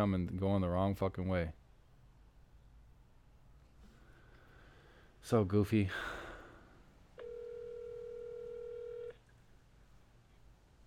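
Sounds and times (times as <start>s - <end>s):
speech: 0.0s - 1.6s, 5.2s - 6.2s
faint hiss: 0.0s - 10.8s
blocked phone call steady electronic tone: 7.2s - 9.2s.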